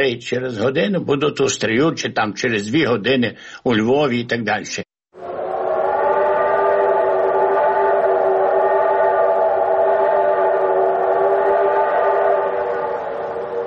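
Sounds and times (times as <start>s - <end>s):
speech: 0.0s - 4.8s
steam locomotive whistle blowing: 5.2s - 13.6s.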